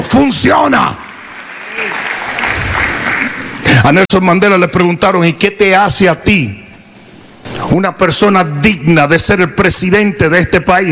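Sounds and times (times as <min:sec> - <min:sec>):
speech: 0:00.1 - 0:01.0, 0:03.8 - 0:06.6, 0:07.5 - 0:10.8
audience applause during a motivational speech: 0:01.2 - 0:03.7.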